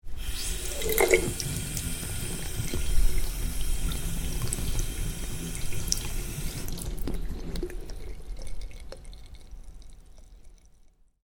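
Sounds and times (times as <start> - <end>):
tap water running into a bathroom sink: 0.1 - 10.6.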